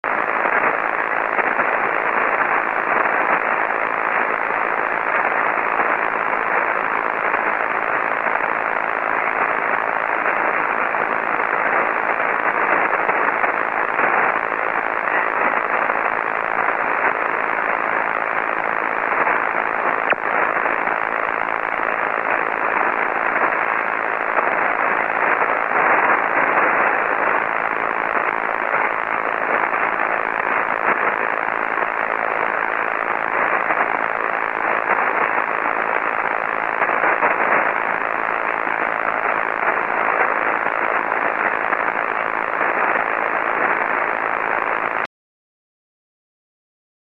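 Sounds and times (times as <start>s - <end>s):
shortwave radio static: 0.0s - 45.1s.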